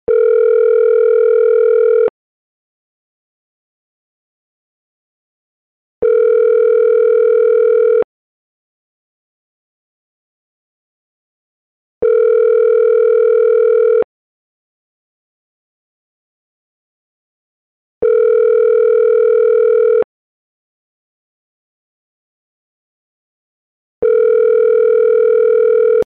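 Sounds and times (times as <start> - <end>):
telephone ringback tone: 0.1 - 2.1, 6.0 - 8.1, 12.0 - 14.1, 18.0 - 20.1, 24.0 - 26.0.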